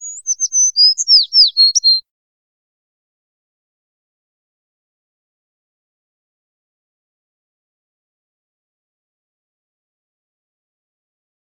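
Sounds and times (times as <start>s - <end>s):
ambient birds: 0.0s - 2.0s.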